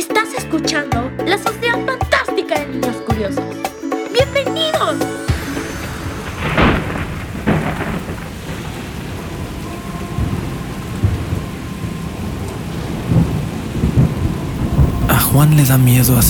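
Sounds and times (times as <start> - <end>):
speech: 0.2 - 3.6, 4.3 - 5.3, 15.4 - 16.2
steady rain hissing in a heavy thunderstorm: 5.5 - 16.2
deep rolling thunder rumbling with sharp cracks and booms: 6.2 - 15.4.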